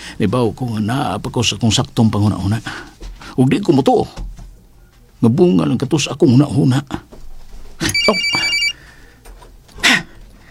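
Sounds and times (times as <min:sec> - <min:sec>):
speech: 0:00.2 - 0:04.3, 0:05.2 - 0:07.1
cellphone ringing with a bright electronic tone: 0:07.8 - 0:08.8.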